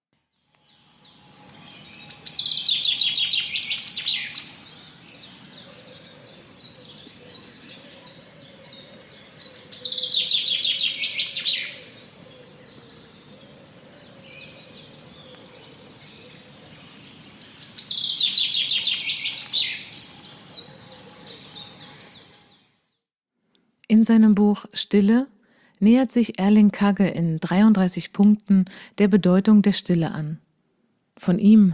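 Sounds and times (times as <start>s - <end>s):
bird trilling song: 0.5s - 23.0s
speech: 24.1s - 30.5s, 31.2s - 31.7s.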